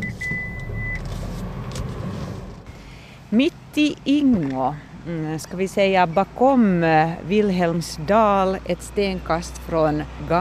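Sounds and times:
thin electronic beep tone: 0:00.0 - 0:01.0
car interior engine and road rumble: 0:00.0 - 0:10.3
speech: 0:03.3 - 0:10.3.

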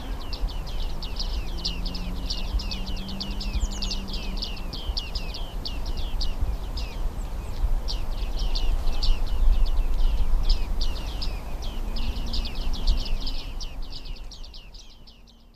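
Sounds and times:
Bearded Reedling flock pinging calls in wind-tossed reeds: 0:00.0 - 0:15.4.

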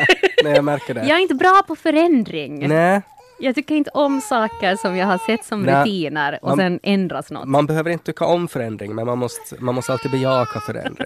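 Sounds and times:
laughter: 0:00.0 - 0:01.2, 0:10.4 - 0:11.0
speech: 0:00.4 - 0:11.0
infant fussing and crying: 0:02.6 - 0:06.6, 0:09.4 - 0:11.0.

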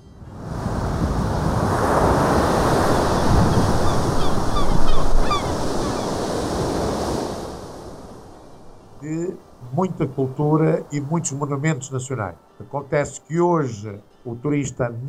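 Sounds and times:
large ocean waves breaking: 0:00.1 - 0:15.0
faint bird calls: 0:03.2 - 0:06.2
speech: 0:09.8 - 0:15.0.

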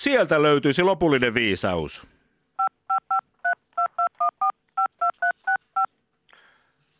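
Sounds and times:
speech: 0:00.0 - 0:02.2
telephone keypad dialing tones as a phone call is being connected: 0:02.6 - 0:05.9.

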